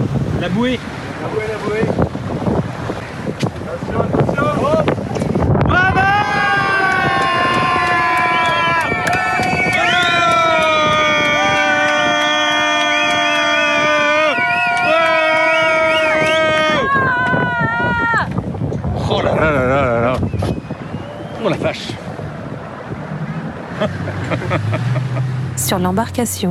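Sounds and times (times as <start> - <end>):
boat engine hum: 0.0 - 14.0, 18.8 - 26.4
wind buffeting a small rented boat on open water: 0.0 - 26.4
speech: 0.4 - 2.5, 3.7 - 6.2, 21.4 - 22.0, 23.8 - 26.4
several people shouting and calling out in long drawn-out cries: 5.7 - 18.4
laughter: 23.6 - 25.5.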